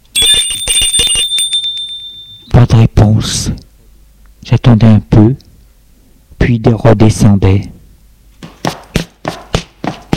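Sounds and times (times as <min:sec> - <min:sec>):
doorbell at a flat's door in an old apartment building ringing: 0:00.1 - 0:02.6
speech: 0:03.2 - 0:03.6, 0:04.5 - 0:05.4, 0:06.4 - 0:07.7.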